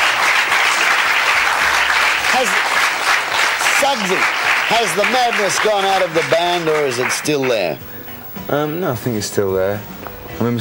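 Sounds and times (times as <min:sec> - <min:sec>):
audience applause for a visiting band: 0:00.0 - 0:07.8
speech: 0:02.4 - 0:02.7, 0:03.8 - 0:10.5.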